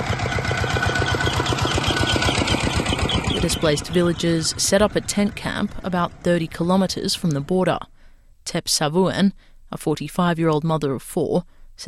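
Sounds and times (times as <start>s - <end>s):
tractor engines chugging at night: 0.0s - 7.8s
speech: 3.6s - 11.8s.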